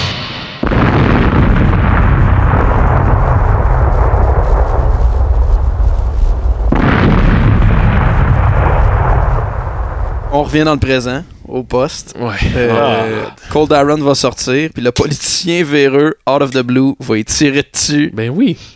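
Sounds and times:
explosion of a detonated fiber cord set off by a robot's electric discharge: 0:00.0 - 0:11.5
heavy rumbling burst: 0:00.0 - 0:15.6
speech: 0:10.4 - 0:18.7.

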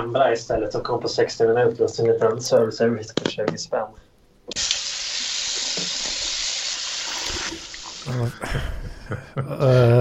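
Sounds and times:
speech: 0:00.0 - 0:04.6, 0:08.1 - 0:09.9
beer pouring into a glass: 0:04.6 - 0:08.2.

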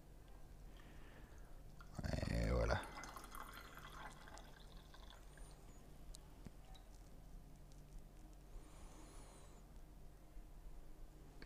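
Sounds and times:
faint trickle and drips of tea: 0:01.7 - 0:05.7
tea pouring from a pot: 0:01.8 - 0:05.7.

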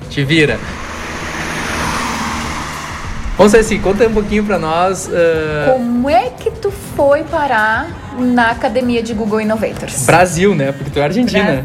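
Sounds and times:
low engine drone: 0:00.0 - 0:06.2
outdoor road traffic of passing cars: 0:00.0 - 0:06.3
speech: 0:00.2 - 0:00.8, 0:03.4 - 0:11.6.

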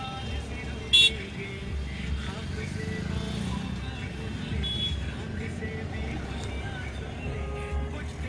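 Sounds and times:
engines of cars, motorbikes and heavier vehicles rumbling at a busy road intersection: 0:00.0 - 0:08.2
short horn toot at a busy road intersection: 0:00.9 - 0:01.3, 0:04.6 - 0:05.1, 0:07.3 - 0:08.0.

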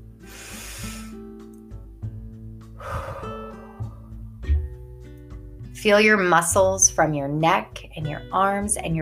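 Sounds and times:
slow deep breaths in and out: 0:00.2 - 0:01.3, 0:02.7 - 0:04.5
speech: 0:05.8 - 0:09.0.

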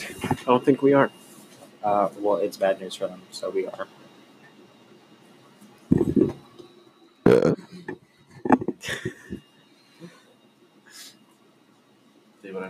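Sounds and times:
speech: 0:00.5 - 0:01.2, 0:01.8 - 0:04.0
throaty burps: 0:07.2 - 0:08.0.

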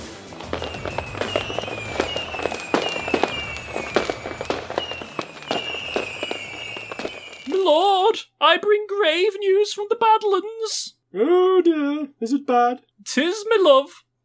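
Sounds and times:
whistling rockets: 0:00.0 - 0:07.8
fireworks finale booms and crackling bursts: 0:00.0 - 0:07.9
speech: 0:08.4 - 0:14.1.

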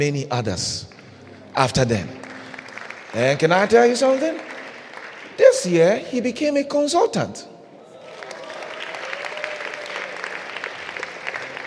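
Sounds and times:
speech: 0:00.0 - 0:01.0, 0:01.6 - 0:02.2, 0:03.1 - 0:04.5, 0:05.4 - 0:07.5
crowd clapping: 0:00.8 - 0:06.2, 0:08.0 - 0:11.6.

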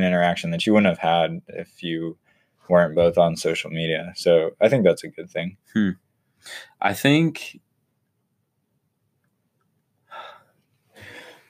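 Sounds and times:
speech: 0:00.0 - 0:07.6
sharp inhaled gasp: 0:10.1 - 0:11.4.

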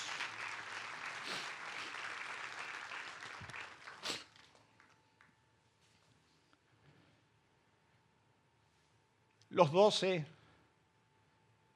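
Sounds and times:
loud audience applause: 0:00.0 - 0:04.6
speech: 0:09.6 - 0:10.4.

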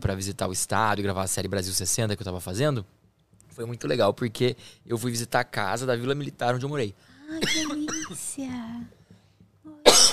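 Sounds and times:
speech: 0:00.1 - 0:03.0, 0:03.6 - 0:09.0
loud cough: 0:07.4 - 0:08.2, 0:09.9 - 0:10.1.

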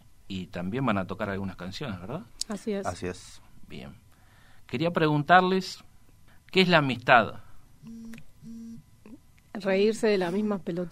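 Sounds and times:
speech: 0:00.3 - 0:04.0, 0:04.7 - 0:05.9, 0:06.5 - 0:08.6, 0:09.6 - 0:10.8
cell phone ringing with electronic tone bursts: 0:07.8 - 0:08.8.

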